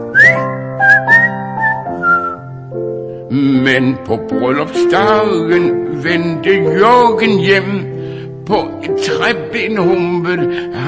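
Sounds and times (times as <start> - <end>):
bright short whistled phrases with quick upward glides: 0.1 - 2.5
speech: 3.3 - 7.9, 8.5 - 10.8.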